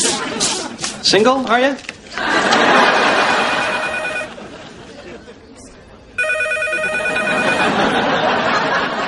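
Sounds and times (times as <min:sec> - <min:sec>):
laughter: 0:00.0 - 0:01.0, 0:02.1 - 0:05.8, 0:06.6 - 0:09.0
busy chatter and murmuring voices: 0:00.0 - 0:02.6, 0:03.4 - 0:07.6
speech: 0:01.1 - 0:02.8
telephone ringing loudly: 0:03.0 - 0:04.4, 0:06.2 - 0:08.4.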